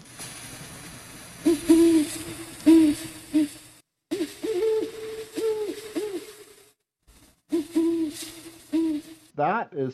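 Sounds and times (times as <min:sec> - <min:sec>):
faint hiss: 0:00.0 - 0:09.9
two great horned owls hooting at a cabin: 0:01.4 - 0:06.6, 0:07.5 - 0:09.3
speech: 0:09.4 - 0:09.9.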